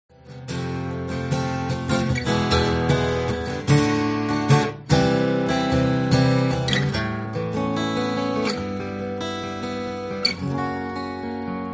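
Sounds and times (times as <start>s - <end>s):
jumbo acoustic electric guitar: 0.1s - 11.7s.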